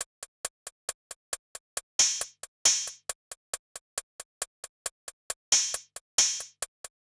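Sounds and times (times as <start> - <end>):
hip hop hi-hat drums at 136 BPM: 1.4 - 3.2, 5.4 - 7.0.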